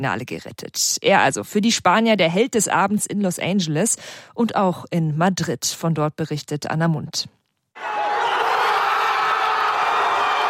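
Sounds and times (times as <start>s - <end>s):
speech: 0.0s - 7.4s
dense crowd of thousands of football fans roaring and cheering outdoors in a fan zone: 7.8s - 10.4s.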